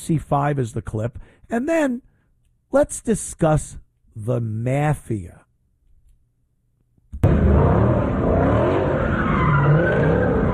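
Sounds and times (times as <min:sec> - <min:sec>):
speech: 0:00.0 - 0:02.1, 0:02.7 - 0:05.4
car engine roaring: 0:07.2 - 0:10.5
car tires screeching while spinning in circles: 0:07.2 - 0:10.5.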